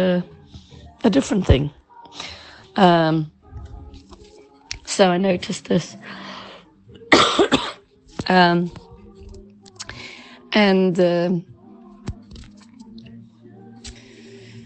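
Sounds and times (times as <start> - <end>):
speech: 0.0 - 3.4, 5.0 - 6.3, 8.3 - 8.8, 10.5 - 11.5
harsh coughs: 7.1 - 7.8.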